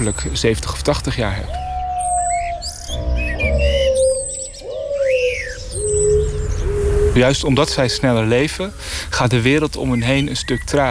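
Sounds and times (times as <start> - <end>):
speech: 0.0 - 1.6, 7.2 - 10.9
bird singing whistles and chirps: 0.0 - 10.9
low rumble: 1.7 - 8.8.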